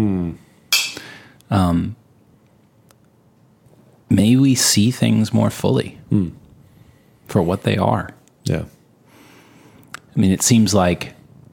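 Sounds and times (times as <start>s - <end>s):
person murmuring: 0.0s - 0.4s
glasses clinking in a toast: 0.7s - 1.1s
speech: 1.5s - 2.0s, 4.1s - 6.4s, 7.3s - 8.8s, 10.2s - 11.2s.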